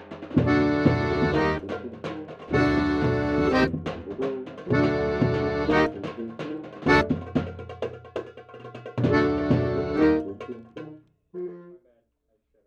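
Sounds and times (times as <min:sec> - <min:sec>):
accordion recorded through direct input: 0:00.4 - 0:07.2, 0:09.0 - 0:10.9.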